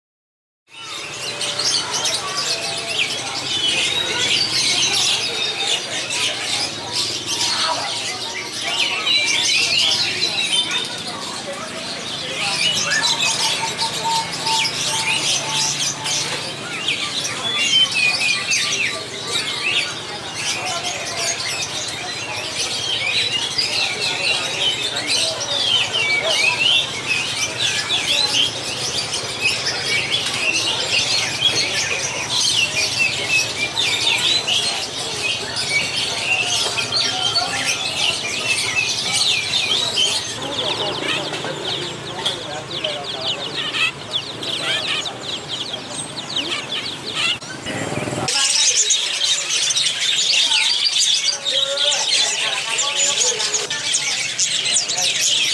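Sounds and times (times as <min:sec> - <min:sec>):
bird market ambience: 0:00.7 - 0:55.5.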